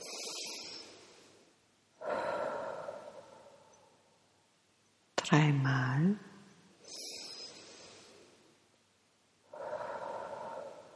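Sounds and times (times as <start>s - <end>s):
person breathing in through the nose and out through the mouth: 0.0s - 4.2s, 6.8s - 8.6s, 9.4s - 10.9s
speech: 5.3s - 6.3s.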